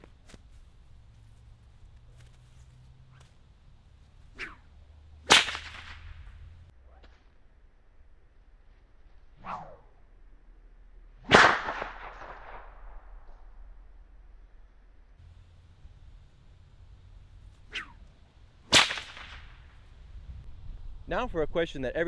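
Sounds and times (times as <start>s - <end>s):
bullwhip cracking through the air: 0.0s - 7.2s, 9.4s - 10.0s, 11.2s - 13.6s, 15.2s - 20.5s
whip swishing: 0.0s - 7.2s, 9.4s - 10.0s, 11.2s - 12.9s, 15.2s - 20.4s
speech: 21.1s - 22.0s.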